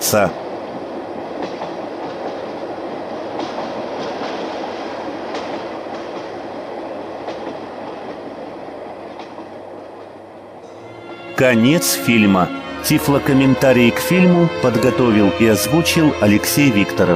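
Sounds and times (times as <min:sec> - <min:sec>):
speech: 0:00.0 - 0:00.4, 0:11.4 - 0:17.1
freight train rolling past: 0:00.0 - 0:17.1
freight train wheels clickety-clack: 0:01.2 - 0:10.2.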